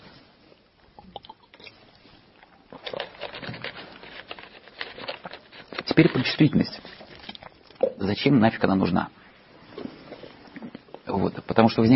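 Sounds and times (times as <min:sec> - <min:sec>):
person taking a drink with slurp and swallowing: 0:01.0 - 0:02.9, 0:09.7 - 0:11.1
speech: 0:06.0 - 0:07.0, 0:08.0 - 0:09.2, 0:11.2 - 0:11.9.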